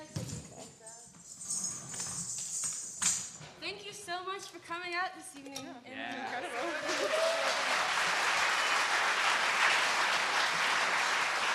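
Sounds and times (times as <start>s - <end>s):
speech: 4.2s - 8.3s
crowd cheering: 6.2s - 11.5s.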